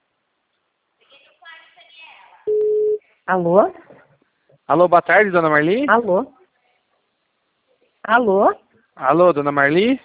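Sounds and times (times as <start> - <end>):
telephone ringing tone on an outgoing call: 2.5 - 3.0
speech: 3.3 - 3.8, 4.7 - 6.4, 8.0 - 10.0.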